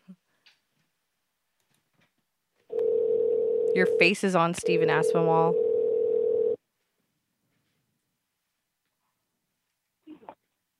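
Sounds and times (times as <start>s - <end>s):
outgoing call ringing tone over the phone line: 2.7s - 6.6s
voice answering the phone: 3.6s - 6.5s
speech: 3.8s - 5.6s.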